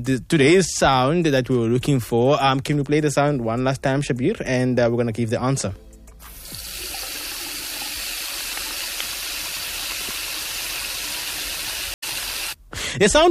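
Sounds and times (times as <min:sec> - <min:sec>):
speech: 0:00.0 - 0:05.9, 0:13.0 - 0:13.2
tap water running steadily into a sink basin: 0:06.3 - 0:12.6.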